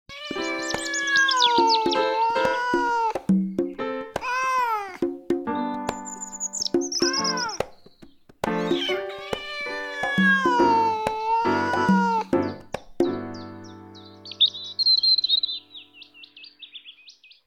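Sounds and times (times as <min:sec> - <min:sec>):
cat meowing in the early morning: 0:00.1 - 0:03.3, 0:04.2 - 0:05.0, 0:06.9 - 0:07.6, 0:08.6 - 0:12.4
birds singing in the early morning: 0:00.2 - 0:04.0, 0:05.5 - 0:10.7, 0:11.4 - 0:17.4.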